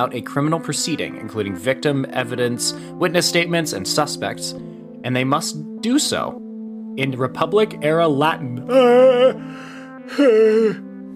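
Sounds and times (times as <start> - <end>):
speech: 0.0 - 10.8
person yawning: 8.6 - 11.0.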